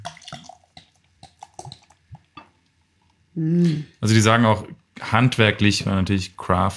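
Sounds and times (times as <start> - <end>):
craft beer pouring into a glass: 0.0 - 2.7
speech: 3.4 - 6.7.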